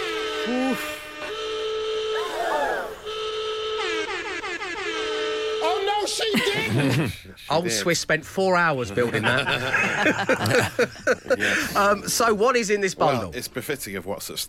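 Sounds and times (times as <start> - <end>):
blaring alarm sound effect with horn- and whistle-like tones: 0.0 - 6.3
speech: 0.5 - 1.0, 6.8 - 14.4
laughter: 3.8 - 5.3, 6.2 - 7.7, 8.9 - 12.2.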